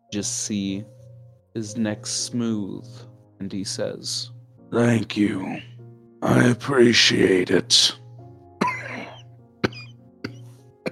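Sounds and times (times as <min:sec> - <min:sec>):
speech: 0:00.1 - 0:01.0, 0:01.6 - 0:08.0
harsh raspy cough: 0:08.6 - 0:10.9.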